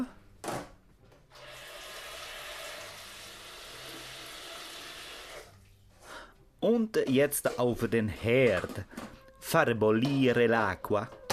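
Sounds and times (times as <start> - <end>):
water running from a tap into a pot for cooking pasta: 1.3 - 5.8
speech: 6.6 - 11.2.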